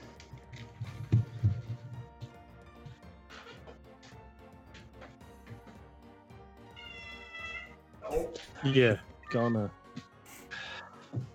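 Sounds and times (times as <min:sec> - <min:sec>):
cat meowing: 0:06.8 - 0:07.7
speech: 0:08.1 - 0:09.8.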